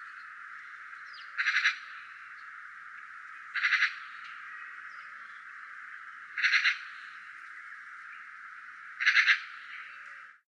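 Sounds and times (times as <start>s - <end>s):
constant hiss: 0.0s - 10.4s
Eurasian magpie giving harsh grating rattles: 1.4s - 1.9s, 3.5s - 4.1s, 6.4s - 6.9s, 9.0s - 9.6s.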